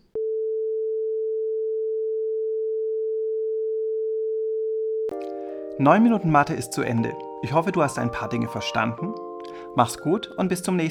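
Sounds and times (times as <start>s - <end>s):
440 Hz pure steady sine tone: 0.1s - 5.2s
speech: 5.8s - 10.8s.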